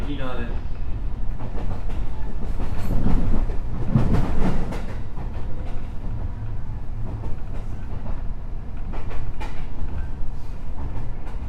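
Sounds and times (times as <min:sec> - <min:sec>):
207 series electric commuter train running on rails between Kyobashi and Kizu, Japan: 0:00.0 - 0:11.4
speech: 0:00.1 - 0:00.7, 0:01.4 - 0:04.3.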